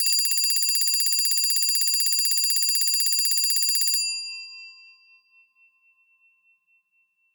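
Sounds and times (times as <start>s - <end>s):
alarm clock bell ringing: 0.0s - 4.7s.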